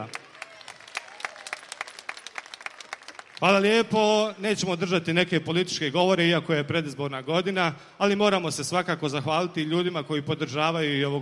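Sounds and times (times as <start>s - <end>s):
speech: 0.0s - 0.2s, 3.4s - 11.2s
summer festival audience applause: 0.0s - 3.7s.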